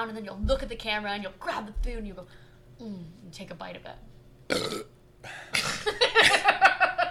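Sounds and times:
speech: 0.0 - 6.4
long rumbling gurgling belch: 4.5 - 4.9
person burping: 4.5 - 4.9, 5.5 - 5.9.

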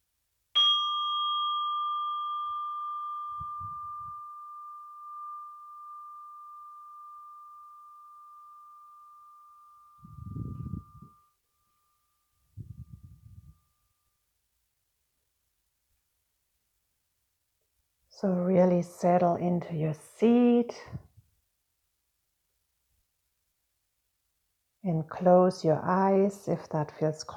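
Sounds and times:
meditation bell ringing with a clear pure tone: 0.6 - 13.9
soft low rustling: 10.0 - 11.2, 12.4 - 13.8
speech: 18.2 - 21.0, 24.9 - 27.3.

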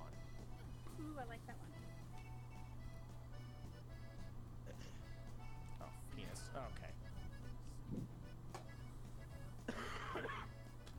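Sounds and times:
steady low hum: 0.0 - 10.9
speech: 1.0 - 2.0, 5.8 - 7.1
cough: 9.7 - 10.6.

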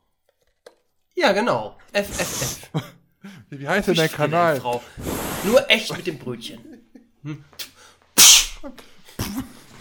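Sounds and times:
speech: 1.2 - 9.5
mouth-made imitation of a fish cake exploding in a deep fryer: 2.1 - 2.7, 5.0 - 5.8, 8.2 - 8.6
laughter: 6.4 - 7.5.

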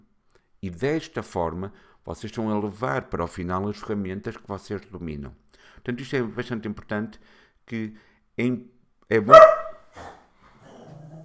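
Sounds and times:
speech: 0.6 - 10.1
dog barking: 9.2 - 11.2
dog whimpering or whining: 10.0 - 11.2.

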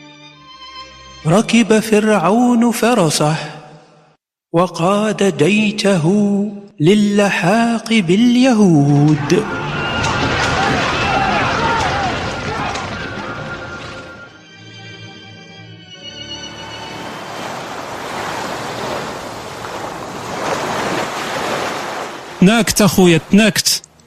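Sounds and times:
speech: 1.2 - 3.6, 4.5 - 9.6, 22.4 - 23.9
sea waves crashing: 9.1 - 14.3, 16.4 - 23.9.

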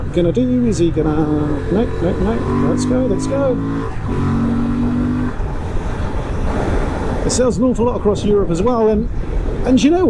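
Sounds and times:
Transalp motorcycle accelerating out of a roundabout: 0.0 - 7.4
broad rumble of wind and road noise: 0.0 - 10.0
speech: 0.1 - 4.6, 7.2 - 10.0.

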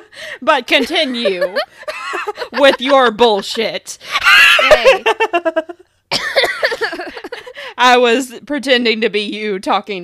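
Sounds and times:
speech: 0.4 - 5.8, 7.8 - 10.0
laughter: 0.8 - 5.8
harsh throaty coughing fit: 6.1 - 7.3.

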